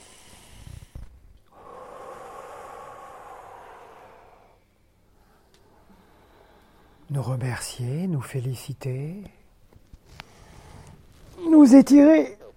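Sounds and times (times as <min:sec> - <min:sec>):
deep inhale and exhale: 0:00.0 - 0:07.1, 0:10.1 - 0:11.2
speech: 0:07.1 - 0:09.4, 0:11.6 - 0:12.4.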